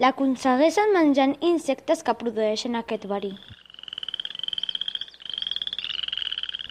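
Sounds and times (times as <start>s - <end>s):
speech: 0.0s - 3.6s
poison dart frog calling in a rapid high-pitched trill: 2.9s - 6.7s.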